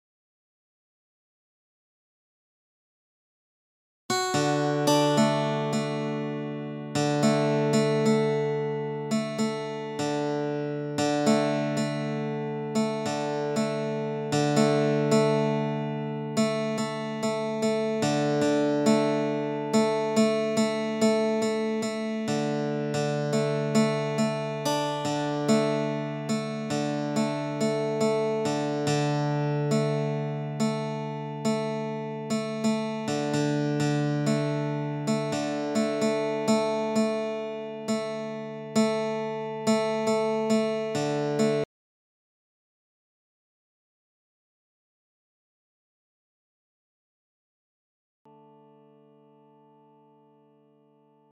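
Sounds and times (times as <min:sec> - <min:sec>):
relaxing guitar music: 0:04.1 - 0:41.6, 0:48.3 - 0:51.3.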